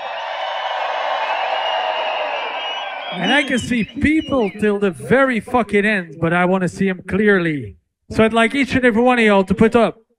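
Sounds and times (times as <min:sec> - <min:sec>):
huge festival crowd cheering and screaming: 0:00.0 - 0:04.5
speech: 0:03.1 - 0:10.0.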